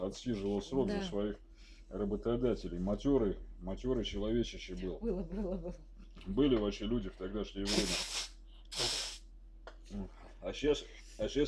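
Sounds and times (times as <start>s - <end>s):
speech: 0.0s - 8.2s, 9.9s - 11.4s
faint steady hum: 0.0s - 11.4s
quick breathy sneeze bursts: 7.7s - 9.2s.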